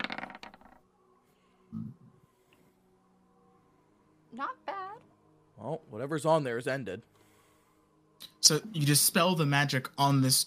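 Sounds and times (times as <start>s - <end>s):
dice clattering on a table during a tabletop roleplaying game: 0.0s - 0.8s
speech: 4.4s - 4.7s, 5.6s - 7.1s, 8.5s - 10.4s.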